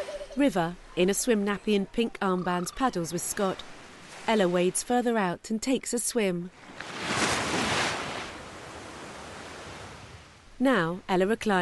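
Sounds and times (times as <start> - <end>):
speech: 0.4 - 7.0, 10.6 - 11.6
ocean surf on the beach: 3.0 - 4.9, 6.6 - 10.4.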